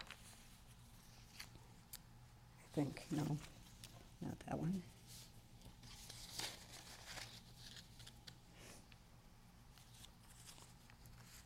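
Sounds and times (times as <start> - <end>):
sheets of paper rustling and crinkling as they are shuffled: 0.0 - 1.6, 5.0 - 8.4, 9.7 - 11.4
speech: 2.8 - 3.6, 4.2 - 5.0.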